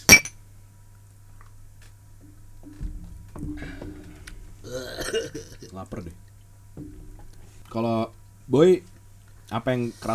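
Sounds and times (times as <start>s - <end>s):
glasses clinking in a toast: 0.0s - 0.4s, 2.3s - 8.5s
faint bumps and rustles in a quiet room: 0.7s - 10.1s
speech: 4.7s - 6.3s, 7.7s - 8.9s, 9.5s - 10.1s.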